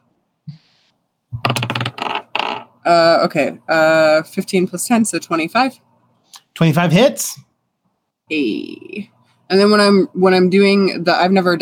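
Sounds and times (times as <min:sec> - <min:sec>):
dice dropping and clattering on a hard floor: 0:01.4 - 0:02.6
speech: 0:02.9 - 0:05.9, 0:06.6 - 0:07.5, 0:08.3 - 0:11.6.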